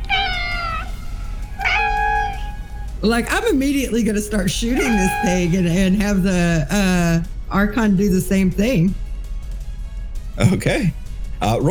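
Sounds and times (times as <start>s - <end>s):
person mimicking a little cat's meows: 0.0s - 0.9s, 1.6s - 2.6s
speech: 3.0s - 9.0s, 10.4s - 11.6s.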